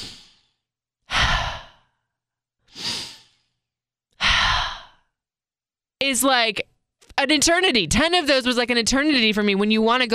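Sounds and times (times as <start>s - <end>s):
slow deep breaths: 0.0s - 5.2s
speech: 6.1s - 10.1s.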